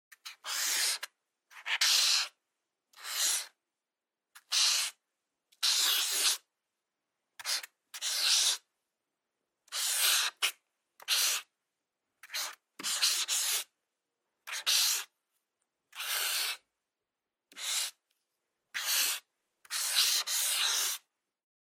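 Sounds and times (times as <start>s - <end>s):
felt tip pen writing: 0.2s - 2.4s, 3.0s - 3.5s, 4.4s - 5.0s, 5.6s - 6.4s, 7.4s - 8.7s, 9.7s - 11.5s, 12.2s - 13.7s, 14.5s - 15.1s, 15.9s - 16.7s, 17.5s - 18.0s, 18.7s - 21.1s.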